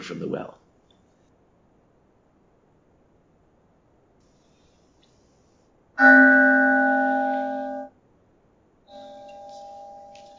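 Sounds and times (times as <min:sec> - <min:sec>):
speech: 0:00.1 - 0:00.6, 0:06.0 - 0:06.3
mindfulness bell ringing: 0:06.0 - 0:07.9, 0:08.9 - 0:10.3.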